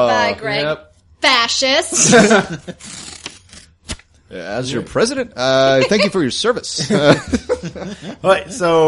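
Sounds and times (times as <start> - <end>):
speech: 0.0 - 3.1, 4.3 - 8.8
laughter: 2.0 - 2.9, 5.7 - 8.8
playing cards being shuffled: 2.5 - 4.2.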